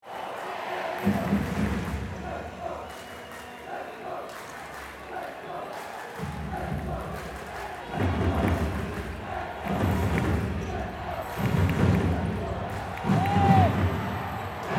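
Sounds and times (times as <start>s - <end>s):
indoor handball game atmosphere in a sports hall: 0.0s - 14.7s.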